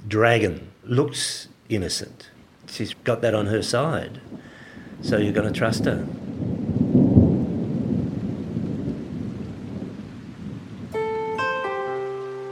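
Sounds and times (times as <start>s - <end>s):
heavy rain: 0.0s - 12.5s
speech: 0.1s - 4.4s, 5.0s - 6.3s
deep rumble of thunder: 3.6s - 11.4s.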